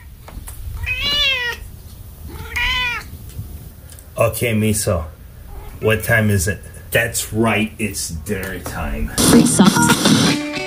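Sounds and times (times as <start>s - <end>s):
cat meowing: 0.7s - 1.7s, 2.2s - 3.2s, 5.5s - 5.8s
speech: 4.4s - 5.2s, 5.8s - 10.2s.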